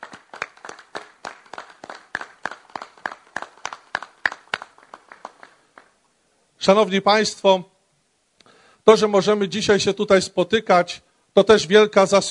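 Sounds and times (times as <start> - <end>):
audience clapping in a steady rhythmic beat: 0.0 - 6.0
speech: 6.6 - 7.7, 8.8 - 12.3.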